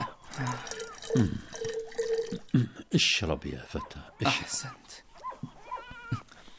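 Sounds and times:
cold fresh drinking water pouring into a cup: 0:00.2 - 0:02.6
speech: 0:01.2 - 0:01.5, 0:02.9 - 0:05.1.

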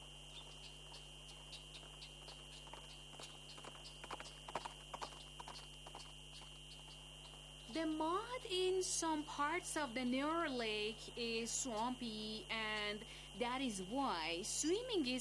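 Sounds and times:
faint steady hum: 0:00.0 - 0:15.1
horse hooves clip-clopping while walking: 0:00.4 - 0:07.4
speech: 0:07.8 - 0:15.1.

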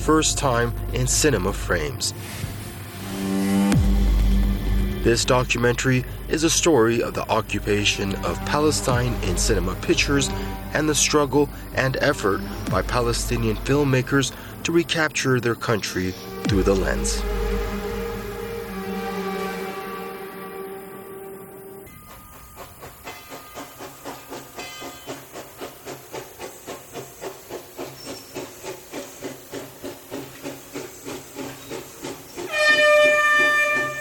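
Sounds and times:
speech: 0:00.0 - 0:02.5, 0:05.0 - 0:17.4
steam train chugging approaching a city: 0:00.0 - 0:33.9.

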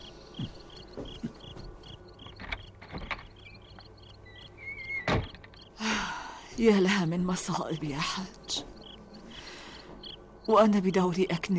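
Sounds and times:
crickets chirping: 0:00.0 - 0:11.2
house door being shut and locked: 0:02.3 - 0:03.6, 0:04.8 - 0:05.7
house door thud: 0:05.0 - 0:05.6
speech: 0:06.6 - 0:08.6, 0:10.5 - 0:11.5.

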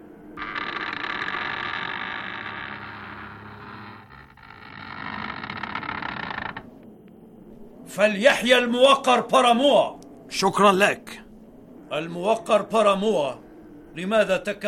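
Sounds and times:
heavy door groaning and scraping open: 0:00.4 - 0:06.9
speech: 0:08.0 - 0:11.1, 0:11.9 - 0:13.4, 0:14.0 - 0:14.6.

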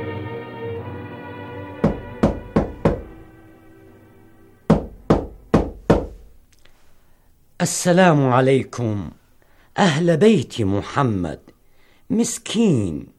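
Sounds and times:
sharp firm knocking on a door: 0:01.8 - 0:03.2, 0:04.7 - 0:06.3
speech: 0:07.6 - 0:09.2, 0:09.8 - 0:11.5, 0:12.1 - 0:13.1.

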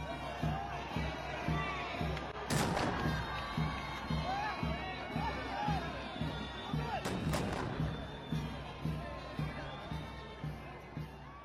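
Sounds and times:
crowd murmur: 0:00.0 - 0:11.4
heavy booming ceremonial cannon salute blasts: 0:02.5 - 0:03.2.

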